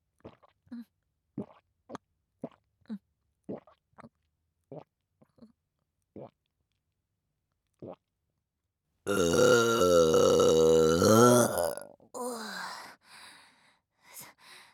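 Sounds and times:
long loud drawn-out burp: 9.1 - 11.9
small mouth noises: 9.1 - 11.9.

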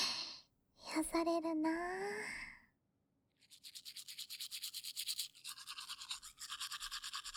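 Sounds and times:
speech: 1.0 - 2.4
toothbrush bristles scrubbing teeth: 3.4 - 7.3.

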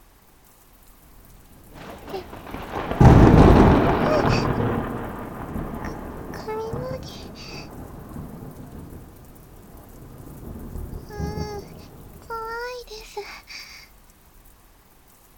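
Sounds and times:
steady rainfall: 0.0 - 15.3
deep crack of thunder rolling into a long rumble: 1.2 - 12.7.

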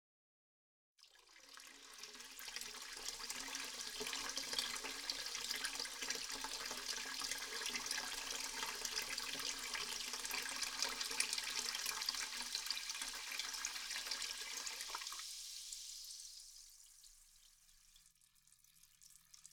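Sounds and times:
hot water pouring into a carbonated bath on a treatment table: 1.0 - 19.5.

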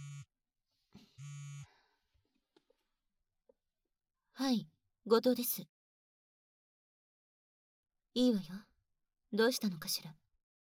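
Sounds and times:
smartphone buzzing on vibrate with an incoming call: 0.0 - 0.3, 1.2 - 1.7
speech: 4.4 - 5.7, 8.2 - 8.7, 9.3 - 10.2.

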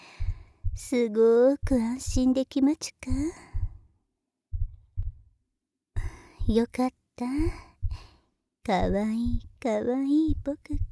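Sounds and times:
soft heartbeat thumps: 0.2 - 1.0, 1.6 - 2.4, 3.1 - 3.8, 4.5 - 5.3, 6.0 - 6.8, 7.4 - 8.1, 8.7 - 9.6, 10.2 - 10.9
speech: 0.9 - 3.5, 6.5 - 7.7, 8.7 - 10.9.

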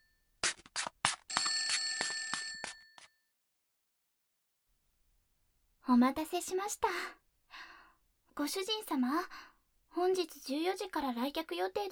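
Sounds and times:
bright metallic bell of an old telephone ringing: 1.3 - 3.2
speech: 5.9 - 7.2, 8.4 - 11.8.

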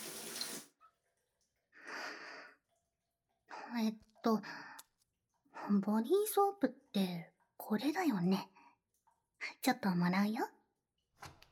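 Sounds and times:
shower spraying: 0.0 - 0.7
speech: 3.7 - 4.7, 5.7 - 8.5, 9.6 - 10.6.

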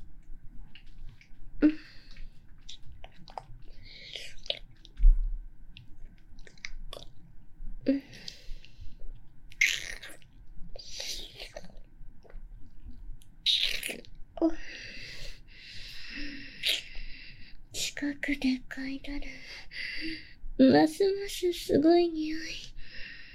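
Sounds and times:
person chewing food while tasting it: 0.6 - 7.3, 8.1 - 14.2
speech: 18.3 - 22.6.

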